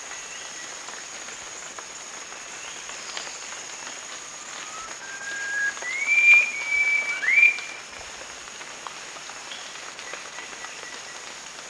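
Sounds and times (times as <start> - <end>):
Rufous-crowned babbler call of clear sustained whistles: 4.5 - 7.8.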